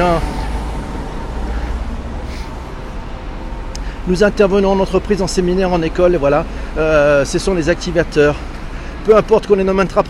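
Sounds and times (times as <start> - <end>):
speech: 0.0 - 0.4, 4.0 - 10.0
motorcycle passing on road: 0.0 - 4.1
steady road traffic: 0.0 - 10.0
truck passing on road: 0.0 - 10.0.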